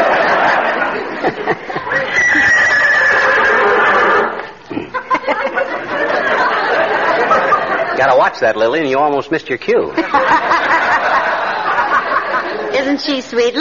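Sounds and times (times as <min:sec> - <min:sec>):
laughter: 0:00.0 - 0:08.2, 0:09.9 - 0:12.9
horse neighing and whinnying: 0:01.9 - 0:04.4
speech: 0:08.3 - 0:10.8, 0:12.8 - 0:13.5.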